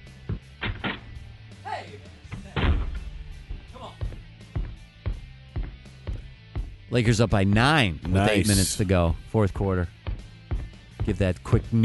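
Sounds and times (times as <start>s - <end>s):
door handled roughly with knocks and bangs: 0.3s - 1.2s
door slamming shut with heavy thuds: 0.6s - 1.1s, 2.3s - 3.1s
speech: 6.9s - 10.0s, 11.1s - 11.8s
voice: 8.1s - 8.8s.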